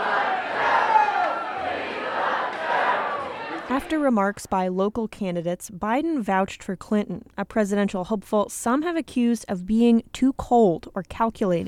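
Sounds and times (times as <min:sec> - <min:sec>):
crowd of about 700 people cheering and yelling at a campaign rally: 0:00.0 - 0:04.1
speech: 0:03.7 - 0:11.6.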